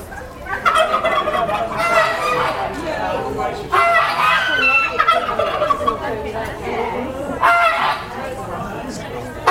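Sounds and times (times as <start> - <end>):
ducks quacking at a poultry show: 0.0 - 6.2, 7.3 - 8.4
geese honking at a poultry show: 0.0 - 6.2, 7.4 - 8.2
chickens clucking at a poultry show: 0.0 - 9.4.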